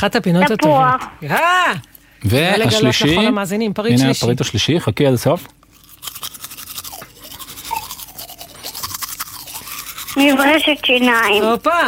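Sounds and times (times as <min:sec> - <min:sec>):
speech: 0:00.0 - 0:06.2, 0:10.2 - 0:11.8
toothbrush scrubbing: 0:05.7 - 0:11.8.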